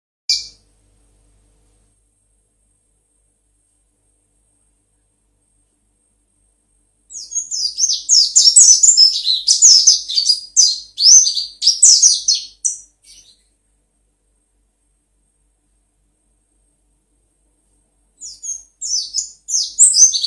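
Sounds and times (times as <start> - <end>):
white-eye twittering song: 0.3 - 0.6, 7.1 - 13.5, 18.2 - 20.2.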